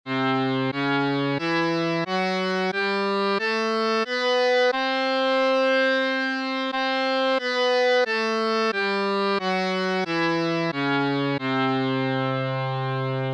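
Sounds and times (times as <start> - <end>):
Hindustani classical melody in marwa thaat: 0.1 - 13.3.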